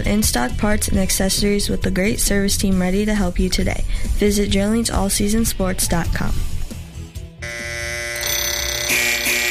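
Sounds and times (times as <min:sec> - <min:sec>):
speech: 0:00.1 - 0:06.5
electronic alarm blaring: 0:07.4 - 0:09.5.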